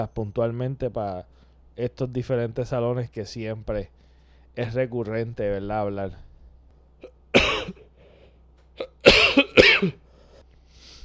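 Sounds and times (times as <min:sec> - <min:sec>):
speech: 0:00.0 - 0:04.0, 0:04.6 - 0:06.3, 0:09.8 - 0:10.0
person coughing harshly: 0:07.0 - 0:08.0, 0:08.8 - 0:10.1.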